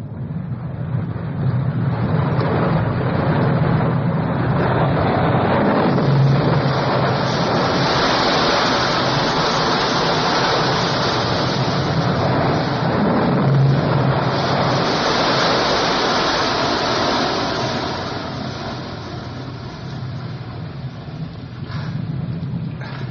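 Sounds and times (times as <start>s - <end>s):
low electronic droning hum: 0.0s - 23.0s
water rushing and crashing in a tunnel: 4.5s - 22.1s.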